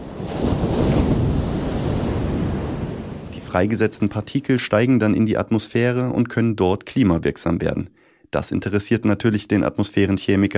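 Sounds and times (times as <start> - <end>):
wind: 0.0 - 3.8
rough sea waves churning and breaking: 0.0 - 4.4
speech: 3.5 - 10.5.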